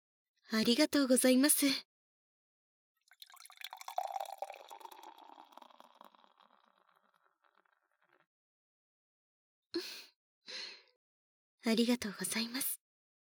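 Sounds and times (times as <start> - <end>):
speech: 0.5 - 1.9, 11.7 - 12.8
alcoholic drink poured into a glass: 3.1 - 8.2.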